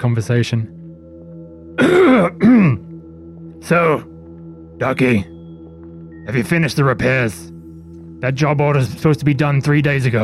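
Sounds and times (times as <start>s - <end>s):
speech: 0.0s - 0.8s, 1.8s - 2.8s, 3.6s - 4.1s, 4.8s - 5.3s, 6.3s - 7.5s, 8.2s - 10.2s
man coughing loudly: 1.8s - 2.9s.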